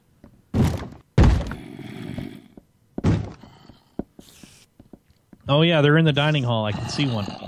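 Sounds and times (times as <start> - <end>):
heavy booming thuds on a door from a monster trying to bust through: 0.5 - 1.6
speech: 5.5 - 7.4.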